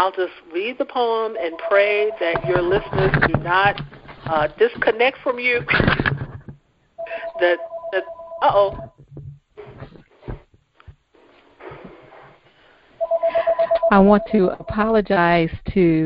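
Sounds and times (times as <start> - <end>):
speech: 0.0 - 6.2, 7.4 - 9.0, 13.4 - 16.0
electronic telephone ringing: 1.4 - 3.7, 7.0 - 8.9, 13.0 - 14.8.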